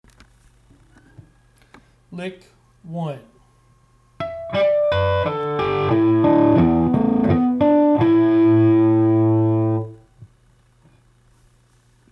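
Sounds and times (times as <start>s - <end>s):
natural harmonics: 4.2s - 10.0s.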